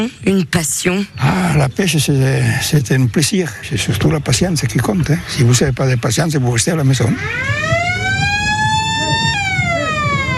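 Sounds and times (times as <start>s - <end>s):
speech: 0.0s - 7.7s
faint murmur: 0.0s - 10.3s
siren-style alarm signalling the end of a fishing contest: 7.1s - 10.3s.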